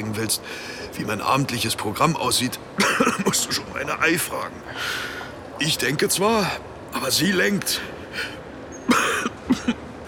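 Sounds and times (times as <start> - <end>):
speech: 0.0 - 8.4
person coughing: 2.8 - 3.7, 8.9 - 9.8.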